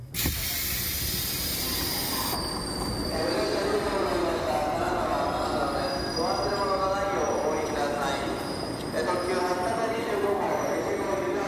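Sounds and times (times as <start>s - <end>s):
pneumatic hiss of train doors sliding open at a station in Kanazawa: 0.0s - 3.0s
train carriage rumble: 0.0s - 11.4s.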